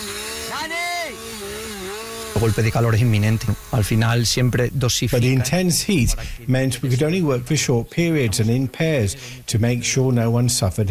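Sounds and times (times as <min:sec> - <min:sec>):
chainsaw used by firefighters fighting a fire revving: 0:00.0 - 0:06.4
speech: 0:02.4 - 0:10.8.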